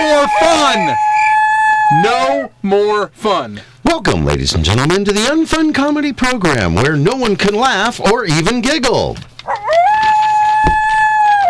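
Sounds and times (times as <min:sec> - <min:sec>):
coyote howling: 0:00.0 - 0:02.6, 0:09.4 - 0:11.4
speech: 0:00.2 - 0:01.1, 0:01.9 - 0:09.6.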